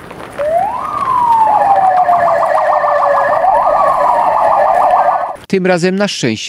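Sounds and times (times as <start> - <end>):
police vehicle siren during riot-control training exercise in Silesia Poland: 0.4 - 5.4
speech: 5.5 - 6.4.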